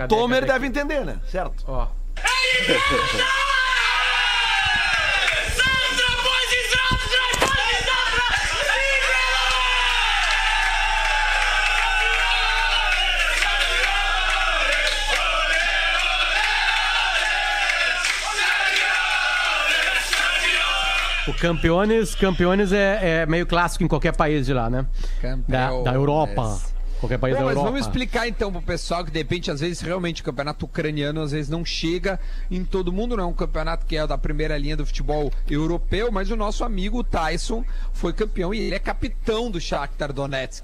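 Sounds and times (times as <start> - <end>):
speech: 0.0 - 3.5, 21.4 - 40.6
sharp yells of football players: 2.2 - 21.6
football players chanting a war cry in a locker room: 2.3 - 21.4.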